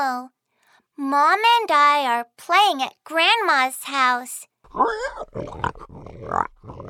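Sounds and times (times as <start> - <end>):
speech: 0.1 - 0.4, 1.0 - 6.8
pig grunting and oinking: 4.7 - 6.8.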